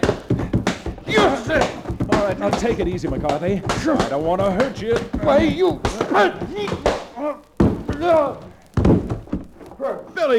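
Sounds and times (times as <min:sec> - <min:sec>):
heavy thud of a body hitting the floor: 0:00.0 - 0:10.0
sharp blow landing in a fistfight: 0:00.0 - 0:10.0
speech: 0:02.2 - 0:09.0, 0:09.8 - 0:10.3.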